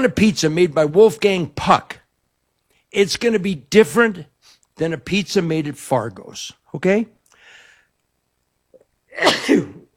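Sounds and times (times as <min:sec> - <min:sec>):
speech: 0:00.0 - 0:02.0, 0:02.9 - 0:07.2, 0:09.2 - 0:09.8
person sneezing: 0:08.8 - 0:09.9.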